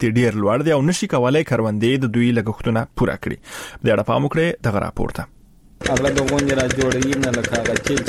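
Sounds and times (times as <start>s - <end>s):
speech: 0.0s - 8.0s
diesel generator running a water pump irrigating a wheat field: 5.8s - 8.0s.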